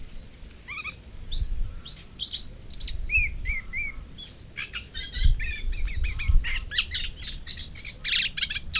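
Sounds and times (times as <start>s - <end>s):
Moustached warbler song: 0.0s - 8.7s.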